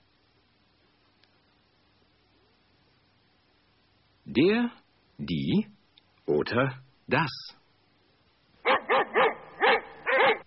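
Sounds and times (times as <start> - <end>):
speech: 4.4 - 7.6
dog barking: 8.6 - 10.4.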